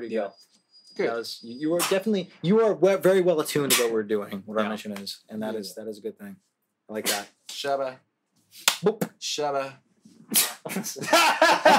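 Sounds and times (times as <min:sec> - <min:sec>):
speech: 0:00.0 - 0:11.7
voiced sneeze-like outbursts: 0:07.0 - 0:07.4, 0:10.3 - 0:10.7
sudden breathy sneeze: 0:10.3 - 0:10.6
laughter: 0:10.7 - 0:11.7.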